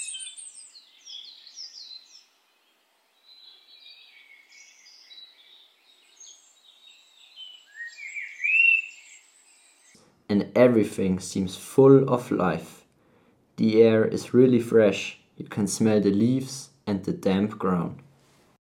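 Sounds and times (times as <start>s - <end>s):
several birds chirping and trilling in a forest: 0.0s - 10.0s
speech: 10.3s - 12.8s, 13.6s - 18.0s.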